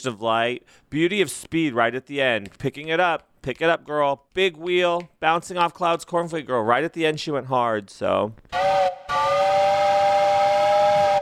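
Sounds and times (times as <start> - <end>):
speech: 0.0 - 9.6
steam train whistle: 8.5 - 11.2.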